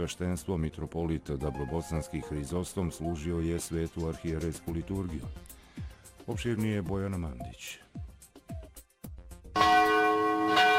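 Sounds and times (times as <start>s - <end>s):
speech: 0.0s - 5.6s, 6.3s - 7.8s
cathedral church bells ringing for its feast day: 9.6s - 10.7s.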